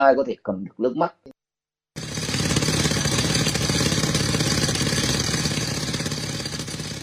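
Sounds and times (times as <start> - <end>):
speech: 0.0 - 1.3
concrete drill breaking large rocks in a mountain forest: 2.0 - 7.0.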